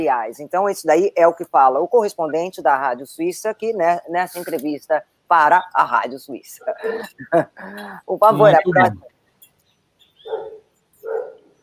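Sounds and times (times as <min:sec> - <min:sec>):
speech: 0:00.0 - 0:09.1
laughter: 0:08.4 - 0:09.0
dog barking: 0:10.2 - 0:11.5.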